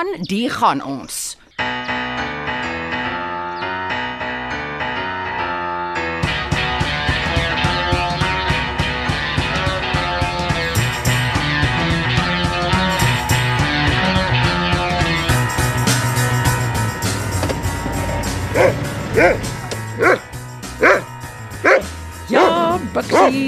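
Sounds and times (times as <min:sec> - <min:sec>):
speech: 0:00.0 - 0:01.8, 0:23.0 - 0:23.4
busy musical background: 0:01.5 - 0:23.4
dog barking and whimpering: 0:18.5 - 0:20.2, 0:20.8 - 0:23.4.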